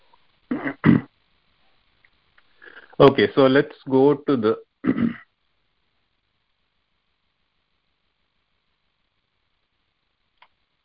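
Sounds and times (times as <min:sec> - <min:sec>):
speech: 0:00.5 - 0:01.0, 0:03.0 - 0:05.2
rough throaty coughs: 0:00.5 - 0:01.1, 0:04.8 - 0:05.2.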